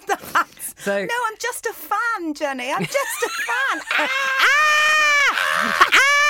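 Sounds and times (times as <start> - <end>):
speech: 0.8 - 4.7
laughter: 2.8 - 6.2
person screaming high-pitched: 3.8 - 6.2.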